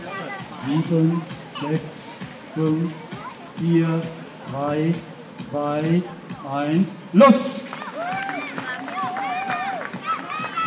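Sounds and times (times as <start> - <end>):
lively crowd with raised voices: 0.0 - 10.6
speech: 0.6 - 7.6
crowd cheering at a charity run: 7.5 - 10.6
spectators clapping at a charity run for a hospice: 7.6 - 10.6.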